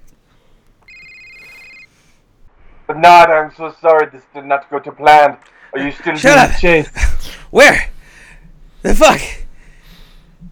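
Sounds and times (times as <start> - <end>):
electronic phone ring tone: 0.8 - 2.0
speech: 2.9 - 7.9, 8.8 - 9.4.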